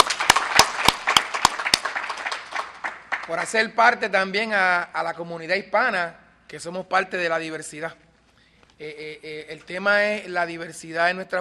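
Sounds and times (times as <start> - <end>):
audience applause at an evening community event: 0.0 - 3.5
loud sharp claps: 0.0 - 3.7
speech: 3.3 - 8.0, 8.8 - 11.4.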